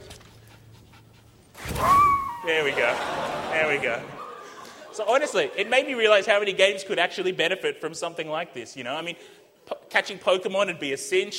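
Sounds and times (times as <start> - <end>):
puppy in a video game panting: 0.0 - 1.6
laughter: 2.3 - 6.5
speech: 2.5 - 4.2, 5.0 - 11.3.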